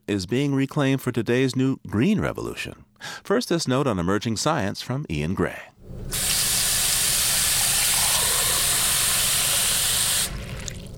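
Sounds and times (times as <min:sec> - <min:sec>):
speech: 0:00.1 - 0:06.3
water poured into a big glass: 0:05.8 - 0:10.9.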